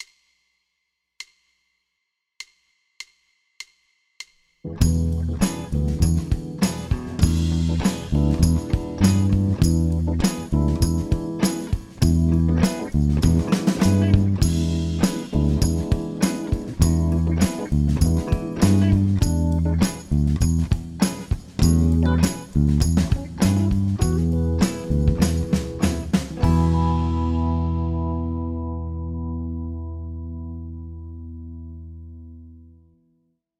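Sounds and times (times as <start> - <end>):
easy funk bass groove: 4.7 - 30.6.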